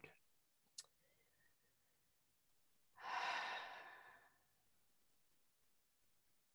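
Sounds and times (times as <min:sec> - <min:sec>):
deep breath in through nose and out through mouth: 0:03.0 - 0:04.5.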